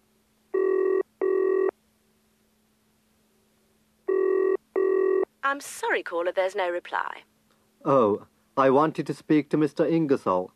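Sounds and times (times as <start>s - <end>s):
office extension telephone ringing with a buzzing double ring: 0.6s - 1.7s, 4.1s - 5.3s
speech: 5.4s - 10.5s.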